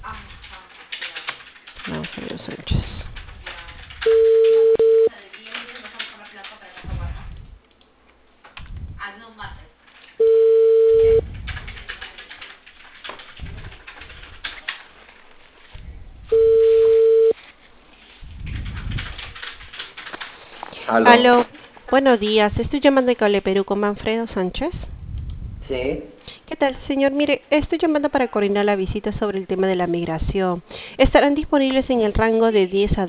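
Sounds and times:
speech: 1.8s - 2.9s, 21.0s - 24.9s, 25.7s - 33.0s
telephone call ringing: 4.0s - 5.1s, 10.2s - 11.2s, 16.3s - 17.4s.

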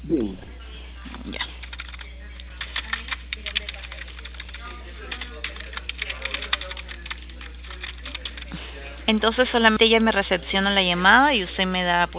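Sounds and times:
speech: 0.1s - 0.5s, 1.2s - 1.5s, 9.2s - 12.1s
typing a message on a computer keyboard: 1.6s - 8.5s.

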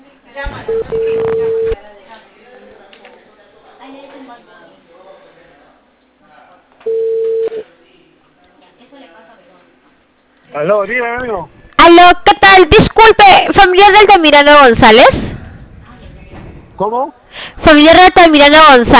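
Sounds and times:
speech: 0.4s - 1.5s, 10.6s - 15.2s, 16.8s - 18.9s
phone ringing tones of a call to a mobile number over the line: 0.6s - 1.8s, 6.8s - 7.6s.

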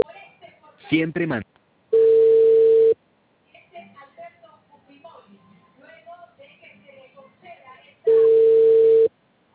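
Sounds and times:
speech: 0.9s - 1.5s
telephone tone beeps while placing a call: 2.0s - 3.0s, 8.1s - 9.1s.

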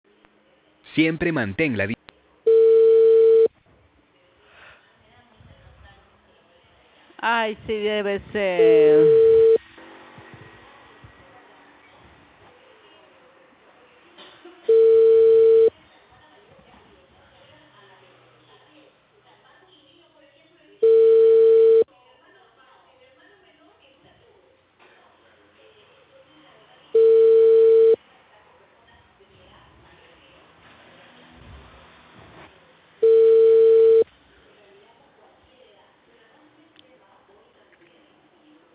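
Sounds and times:
speech: 1.0s - 2.0s, 7.4s - 9.5s
unanswered telephone call ringing: 2.5s - 3.5s, 8.7s - 9.6s, 14.7s - 15.7s, 20.8s - 21.9s, 27.0s - 28.0s, 33.0s - 34.0s.

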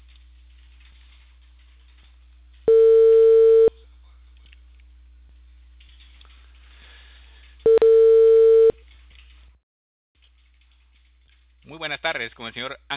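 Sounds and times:
loud steady telephone ringback tones: 2.7s - 3.7s, 7.7s - 8.8s
speech: 12.1s - 12.9s.

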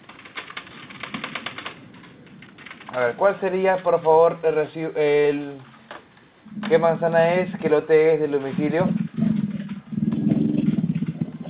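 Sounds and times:
speech: 3.0s - 5.7s, 6.6s - 9.0s
motorcycle engine idling: 6.5s - 11.4s.

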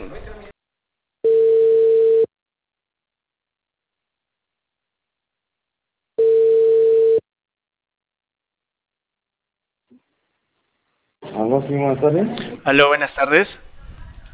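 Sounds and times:
ringback tone on an outgoing telephone call: 1.2s - 2.3s, 6.2s - 7.2s
speech: 11.7s - 13.6s.

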